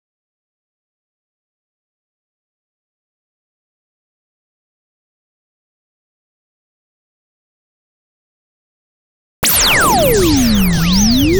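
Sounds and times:
complex electro synths in D sharp minor: 9.4 - 11.3.

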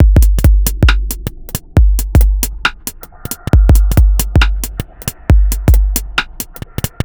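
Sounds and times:
dubstep drum loop: 0.0 - 7.0.

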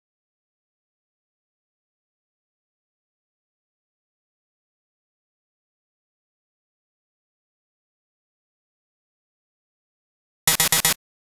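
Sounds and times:
complex electro synth sound effects: 10.5 - 11.0.

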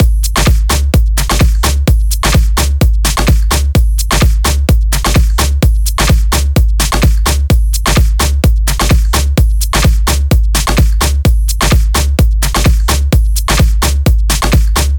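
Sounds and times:
dirty Dutch drum kit beat: 0.0 - 14.9.

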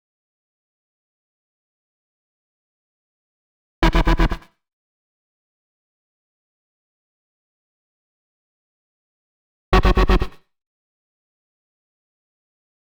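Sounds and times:
bass in B minor at 122 BPM: 3.8 - 4.4.

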